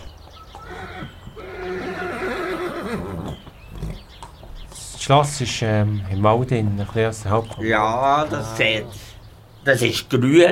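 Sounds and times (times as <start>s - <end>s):
horse neighing in a long wavering whinny: 0.6s - 3.4s, 8.0s - 9.2s, 9.8s - 10.1s
speech: 5.1s - 10.5s.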